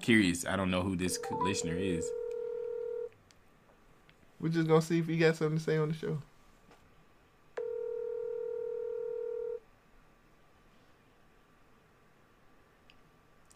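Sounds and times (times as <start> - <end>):
speech: 0.0 - 2.2, 4.4 - 6.3
outgoing phone call ringback tone: 1.2 - 3.1, 7.6 - 9.6.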